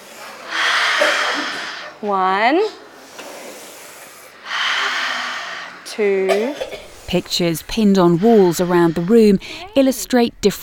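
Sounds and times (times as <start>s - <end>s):
children taking a big deep breath together: 0.0s - 2.0s, 3.0s - 6.0s, 6.7s - 9.8s
speech: 2.0s - 2.8s, 6.0s - 10.6s.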